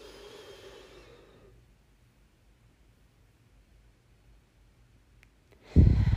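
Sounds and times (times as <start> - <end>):
deep breath in through the nose and out through the mouth: 0.0 - 1.6, 5.6 - 6.1.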